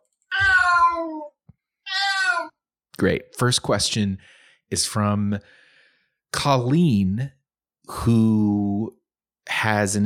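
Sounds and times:
cat giving a sad mournful meow: 0.3 - 1.3, 1.9 - 2.5
speech: 3.0 - 5.6, 6.3 - 10.0.

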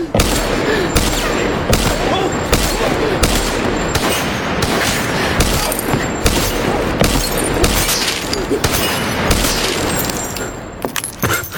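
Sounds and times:
gunshots striking bulletproof glass of a car windshield: 0.2 - 11.2.

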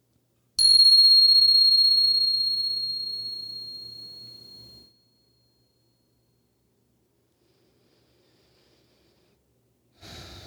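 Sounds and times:
bell ringing: 0.6 - 4.8.

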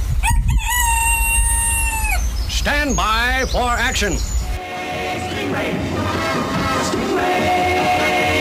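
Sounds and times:
cockerel crowing: 0.2 - 2.3
speech: 2.6 - 8.2.

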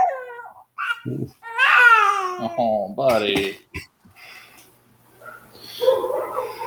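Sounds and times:
baby fussing angrily and crying: 0.3 - 2.7
speech: 1.0 - 1.5, 2.4 - 4.4
dog barking: 5.2 - 6.6.

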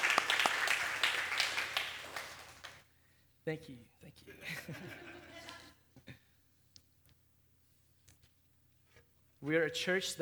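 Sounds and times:
audience applauding: 0.0 - 2.8
speech: 3.4 - 5.4, 9.4 - 10.2
laughter: 4.3 - 5.8.

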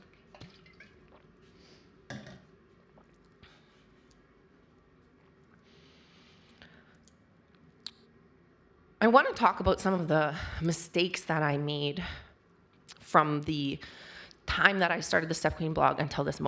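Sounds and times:
person sipping and swallowing water: 0.2 - 5.7
speech: 9.1 - 12.2, 13.1 - 16.4.

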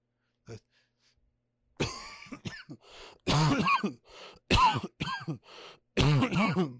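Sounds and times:
person with COVID coughing: 1.8 - 5.4, 6.0 - 6.7
strained raspy breaths: 2.8 - 3.3, 4.0 - 4.5, 5.3 - 6.0.

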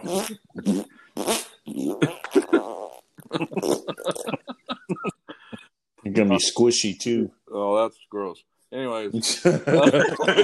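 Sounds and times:
speech: 0.0 - 2.5, 6.2 - 10.4
fart sounds made with the mouth as a vocal imitation: 0.0 - 4.4
laughter: 2.1 - 2.6, 3.2 - 5.6, 9.2 - 10.4.

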